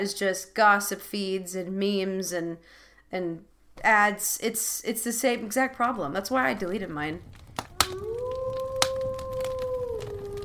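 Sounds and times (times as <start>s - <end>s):
speech: 0.0s - 8.2s
sharp cracks or snaps: 6.4s - 10.4s
lone wolf howling: 7.6s - 10.4s.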